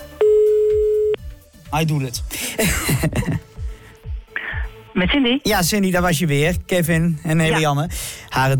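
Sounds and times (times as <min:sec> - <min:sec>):
loud steady telephone tone while dialing a number: 0:00.2 - 0:01.2
speech: 0:01.7 - 0:03.5, 0:04.9 - 0:08.5
laughter: 0:02.6 - 0:03.5.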